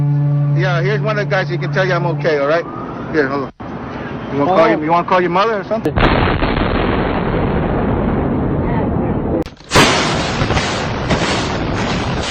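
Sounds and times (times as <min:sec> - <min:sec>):
speech: 0:00.6 - 0:03.6, 0:04.3 - 0:07.1
series of smaller explosions rumbling downtown: 0:05.9 - 0:12.2.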